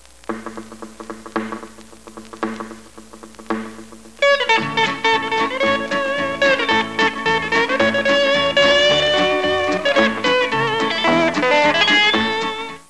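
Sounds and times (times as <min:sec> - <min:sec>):
rhythmic ringtone music: 0:00.2 - 0:12.8.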